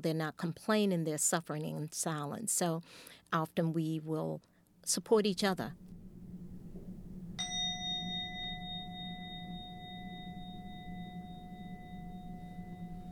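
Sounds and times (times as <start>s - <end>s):
speech: 0.0s - 6.0s
steady low hum: 0.4s - 13.0s
single bell struck and ringing: 7.4s - 13.0s.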